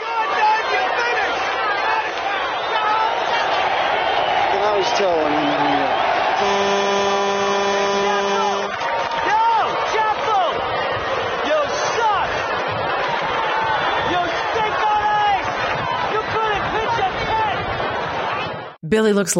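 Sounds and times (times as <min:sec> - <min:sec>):
large baseball stadium crowd cheering, shouting and jeering at a visiting pitcher: 0:00.0 - 0:18.8
loud sustained horn blast: 0:06.4 - 0:08.8
speech: 0:18.9 - 0:19.3.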